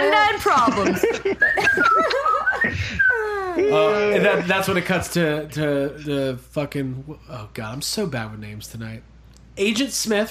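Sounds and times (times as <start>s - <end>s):
speech: 0.4s - 2.2s, 3.7s - 10.2s
laughter: 0.5s - 4.5s
person whistling a carefree tune: 1.4s - 3.5s.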